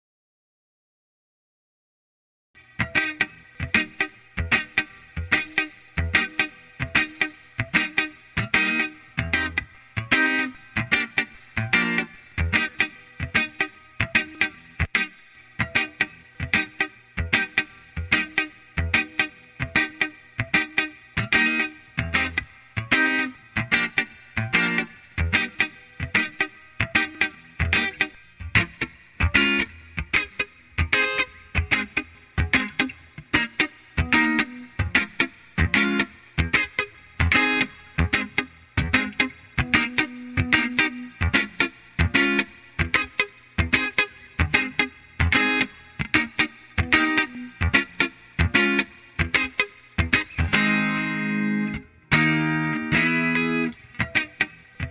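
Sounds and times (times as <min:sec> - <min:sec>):
lead guitar: 0:02.6 - 0:54.8.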